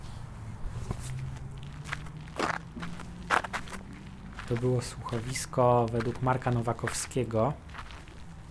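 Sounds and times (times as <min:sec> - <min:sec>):
footsteps crunching along a gravel park path: 0:00.8 - 0:08.5
speech: 0:04.5 - 0:07.7.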